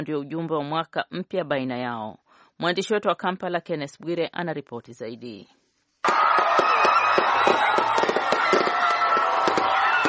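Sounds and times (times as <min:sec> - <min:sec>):
speech: 0:00.0 - 0:06.2, 0:07.2 - 0:08.0
fireworks exploding over Kampala at New Year celebration: 0:06.0 - 0:10.0.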